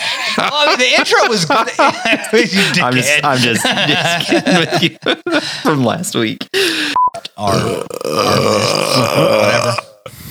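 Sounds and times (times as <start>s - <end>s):
laughter: 0.0s - 6.0s
speech: 0.4s - 10.3s
long loud deep gravelly beer burp: 7.4s - 10.3s.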